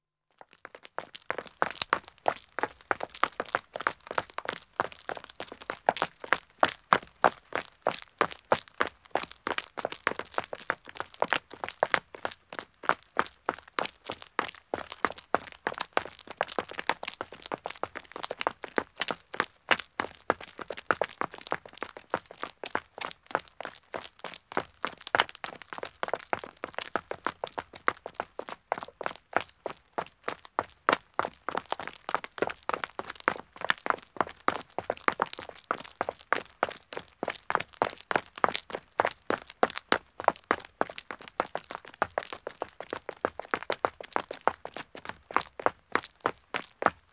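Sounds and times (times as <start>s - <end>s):
two men running footsteps on a country road: 0.8s - 47.0s.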